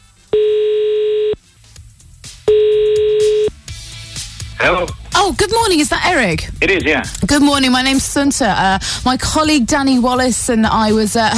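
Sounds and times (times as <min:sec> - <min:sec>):
telephone line ringing out through the handset: 0:00.4 - 0:01.4, 0:02.5 - 0:03.5
speech: 0:04.6 - 0:11.3.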